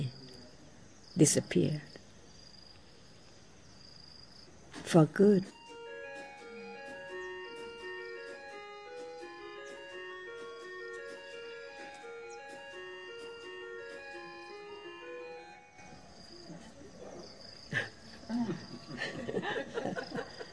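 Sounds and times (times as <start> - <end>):
speech: 1.2 - 1.9, 4.9 - 5.6
clock chiming a bright bell-like melody: 5.5 - 16.1
laughter: 17.6 - 20.5.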